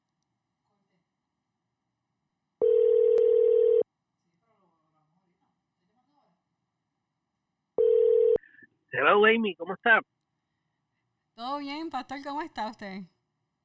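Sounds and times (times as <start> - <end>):
outgoing phone call electronic ringback tone: 2.6 - 3.8, 7.8 - 8.4
speech: 8.9 - 10.2, 11.4 - 13.2.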